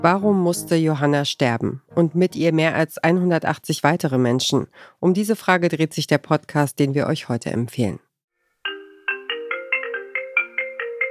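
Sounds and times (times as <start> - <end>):
speech: 0.0 - 8.1
mobile phone melodic ringtone: 8.6 - 11.0.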